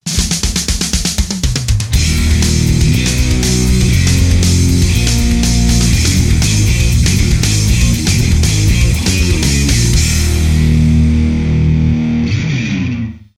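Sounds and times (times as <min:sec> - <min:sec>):
rock music intro: 0:00.0 - 0:13.3.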